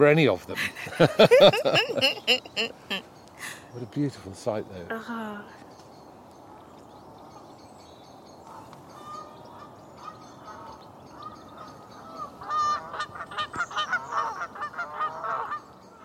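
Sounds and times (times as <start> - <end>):
speech: 0.0 - 5.6
laughter: 0.5 - 3.6
Canada geese honking: 1.1 - 3.0, 8.5 - 15.7.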